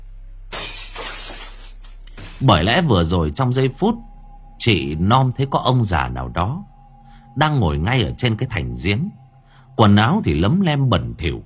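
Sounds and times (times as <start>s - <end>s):
stack of bowls and plates dropped and crashing: 0.5s - 2.7s
speech: 2.4s - 6.7s, 7.4s - 9.2s, 9.8s - 11.4s.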